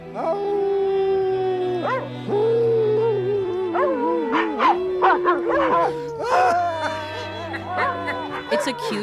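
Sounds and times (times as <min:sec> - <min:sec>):
dogs howling: 0:00.0 - 0:09.0
speech: 0:00.2 - 0:00.5, 0:08.7 - 0:09.0
dogs barking and yipping: 0:01.8 - 0:02.1, 0:03.7 - 0:09.0.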